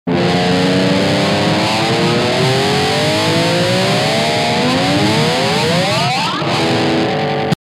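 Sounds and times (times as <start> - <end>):
guitar: 0.1 - 7.6.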